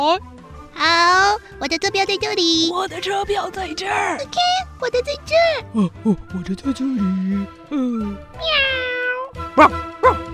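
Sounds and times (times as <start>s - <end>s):
speech: 0.1s - 8.8s, 9.6s - 10.2s
cat meowing: 8.4s - 9.4s.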